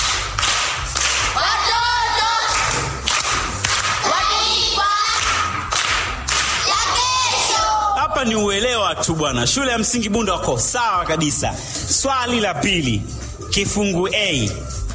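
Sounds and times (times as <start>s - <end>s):
group applause in a primary school quiz session: 0.0s - 7.8s
voices chanting along over clapping: 1.3s - 2.9s, 4.0s - 5.6s
speech: 9.0s - 14.7s.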